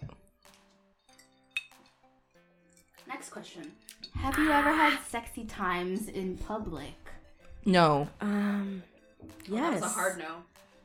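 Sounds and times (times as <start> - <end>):
glasses clinking in a toast: 1.0 - 2.0
speech: 3.1 - 10.5.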